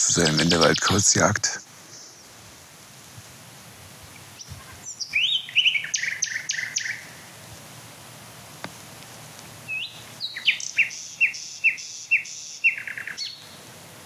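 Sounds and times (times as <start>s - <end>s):
male Common Nightingale singing in woodland at dusk: 0.0s - 2.3s, 4.4s - 7.1s, 9.7s - 13.6s
speech: 0.2s - 1.7s.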